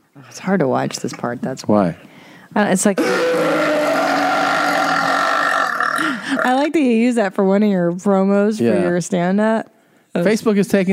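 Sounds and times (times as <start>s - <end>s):
speech: 0.2s - 3.8s, 6.4s - 10.9s
woman burping loudly in a played video clip: 3.0s - 6.7s.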